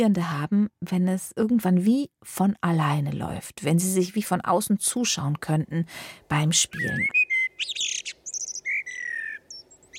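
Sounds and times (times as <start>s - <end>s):
speech: 0.0s - 7.9s
songbird singing chirps, trills and whistled notes: 6.5s - 9.9s.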